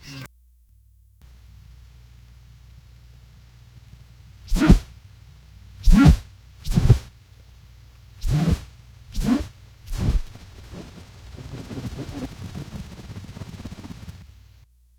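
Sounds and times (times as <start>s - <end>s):
giant may beetle wing flapping: 4.5s - 4.9s, 5.8s - 7.1s, 8.2s - 14.3s.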